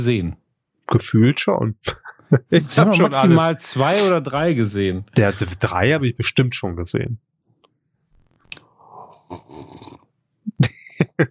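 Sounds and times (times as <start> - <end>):
speech: 0.0 - 7.3
laughter: 2.2 - 4.1, 10.6 - 11.2
loud noisy gulp: 8.4 - 10.2
person slurping a drink: 8.5 - 10.1.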